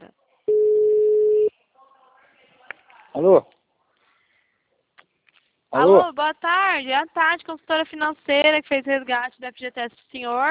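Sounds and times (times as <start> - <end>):
telephone ringback tone while calling someone: 0.5 - 1.5
speech: 3.2 - 3.6, 5.9 - 10.4.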